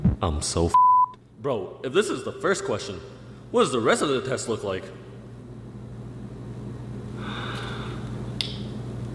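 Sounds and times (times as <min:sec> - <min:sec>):
speech: 0:00.2 - 0:05.1
student's brief sharp puff of breath: 0:07.2 - 0:08.1
student breathing heavily during a class test: 0:07.2 - 0:08.3.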